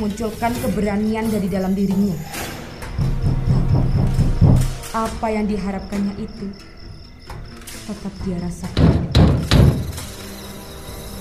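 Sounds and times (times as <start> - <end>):
speech: 0.0 - 2.5, 5.0 - 6.8, 7.9 - 9.6
pounding on a door: 2.8 - 5.0, 8.6 - 10.0.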